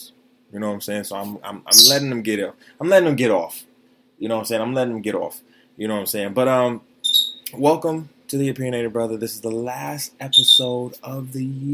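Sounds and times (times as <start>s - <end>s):
speech: 0.5s - 6.9s, 7.5s - 11.7s
pet bird chirping: 1.7s - 2.1s, 7.0s - 7.5s, 10.3s - 10.8s.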